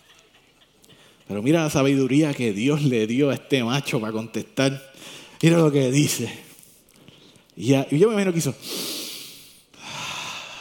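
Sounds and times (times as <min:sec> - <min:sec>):
speech: 0:01.3 - 0:06.5, 0:07.6 - 0:08.9
person drawing a long deep breath and exhaling slowly: 0:08.6 - 0:10.5.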